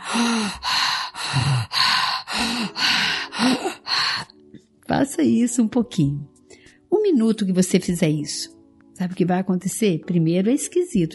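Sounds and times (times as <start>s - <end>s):
forceful breathing through the mouth in a breathing exercise: 0.0s - 4.3s
speech: 5.0s - 6.4s, 7.0s - 11.1s.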